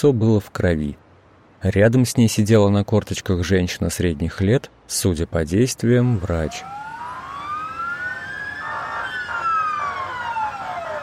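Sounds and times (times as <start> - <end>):
speech: 0.0 - 1.0, 1.6 - 6.9
traffic hiss: 0.0 - 11.0
ambulance siren wailing: 6.1 - 11.0.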